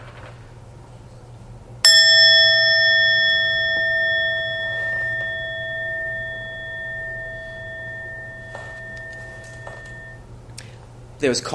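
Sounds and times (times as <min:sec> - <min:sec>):
bell struck and ringing with a bright metallic tone: 0:01.9 - 0:10.2.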